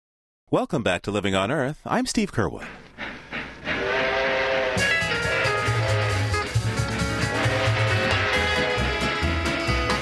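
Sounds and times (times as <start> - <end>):
speech: 0.5 - 2.8
20th Century Limited passenger express train rumbling along the tracks: 2.7 - 9.9.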